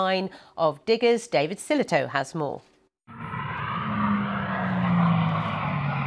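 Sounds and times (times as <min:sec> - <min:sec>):
speech: 0:00.0 - 0:02.7
hydrogen-powered record car engine roaring past: 0:03.1 - 0:06.0.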